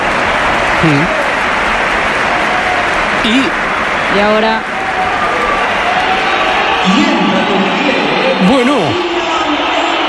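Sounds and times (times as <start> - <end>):
stadium crowd applause during a football match: 0.0 - 10.0
speech: 0.8 - 1.2, 3.2 - 5.2, 6.8 - 9.1.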